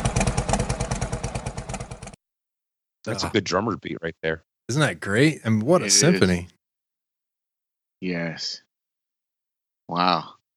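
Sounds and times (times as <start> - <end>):
loud engine idling with lumpy galloping rhythm: 0.0 - 2.2
speech: 3.0 - 6.6, 8.0 - 8.6, 9.9 - 10.4.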